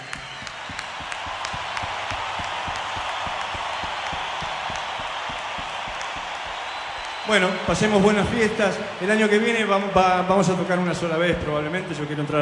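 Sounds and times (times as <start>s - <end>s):
audience applause at a live band concert: 0.0s - 10.5s
speech: 7.3s - 12.3s.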